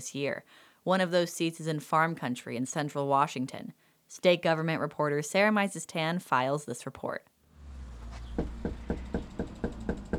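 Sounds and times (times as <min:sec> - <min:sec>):
speech: 0:00.0 - 0:07.3
knocking on a front door in Yakima Washington during political canvassing: 0:08.3 - 0:10.1.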